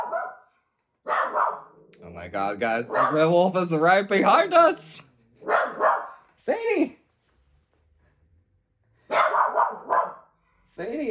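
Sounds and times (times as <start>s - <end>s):
dog barking in a writing room: 0.0s - 1.9s, 2.9s - 3.4s, 5.4s - 6.2s, 9.1s - 10.4s
speech: 2.2s - 5.6s, 6.4s - 7.0s, 10.8s - 11.0s.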